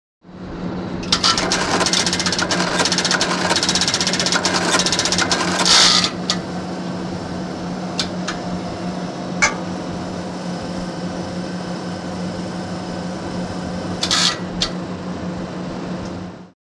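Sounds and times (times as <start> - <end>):
computer room hum: 0.3 - 16.5.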